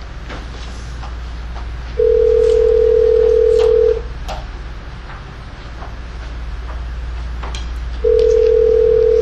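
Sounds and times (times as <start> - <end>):
low hum: 0.0 - 9.2
telephone ringback tone: 2.0 - 4.0, 8.0 - 9.2.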